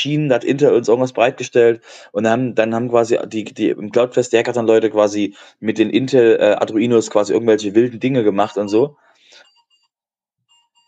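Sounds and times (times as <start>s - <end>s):
speech: 0.0s - 9.1s
electronic alarm clock beeping: 8.4s - 9.9s, 10.5s - 10.8s.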